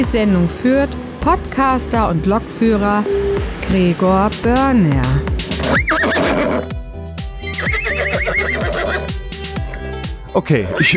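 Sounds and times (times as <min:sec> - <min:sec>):
speech: 0:00.0 - 0:06.8, 0:10.4 - 0:10.9
horse of a horse-drawn railway whinnying: 0:05.6 - 0:06.8, 0:07.4 - 0:09.1, 0:10.6 - 0:10.9.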